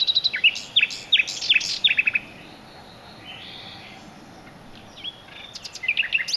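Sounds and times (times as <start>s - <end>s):
nightingale singing at dusk: 0.0s - 6.3s.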